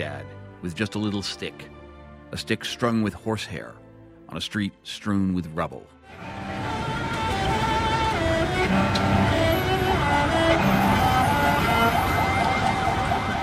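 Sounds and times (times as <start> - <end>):
speech: 0.0 - 6.3
busy street traffic rumbling: 6.1 - 13.4
emergency vehicle sirens wailing: 6.2 - 13.4.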